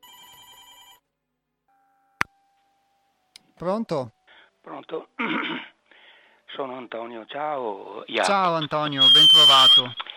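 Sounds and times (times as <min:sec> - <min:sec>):
telephone ringing in a short buzzy electronic burst: 0:00.0 - 0:01.0
speech: 0:03.6 - 0:05.7, 0:06.5 - 0:10.0.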